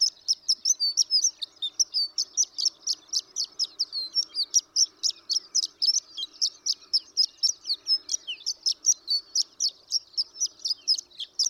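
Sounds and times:
horned lark song: 0:00.0 - 0:11.4.

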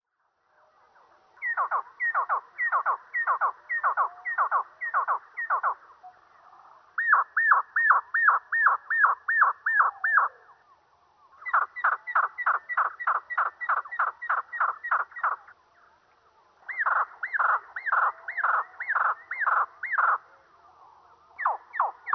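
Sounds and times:
sedge wren singing: 0:01.4 - 0:10.6, 0:11.3 - 0:15.6, 0:16.6 - 0:22.1.

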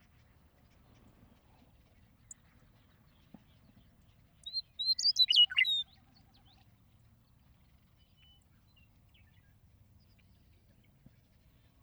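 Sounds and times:
Western meadowlark singing: 0:04.4 - 0:05.8.

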